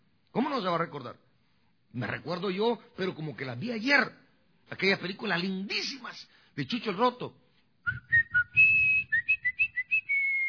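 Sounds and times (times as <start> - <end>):
speech: 0.4 - 1.3, 1.9 - 8.1
person whistling a short lively tune: 7.8 - 10.4.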